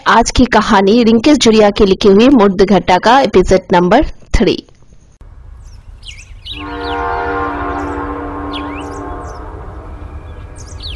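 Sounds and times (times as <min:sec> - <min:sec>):
speech: 0:00.1 - 0:04.7
birds chirping faintly: 0:04.8 - 0:10.9
low rumble of a train passing a railway station: 0:05.2 - 0:10.9
train horn blast at a railway station: 0:06.4 - 0:10.9.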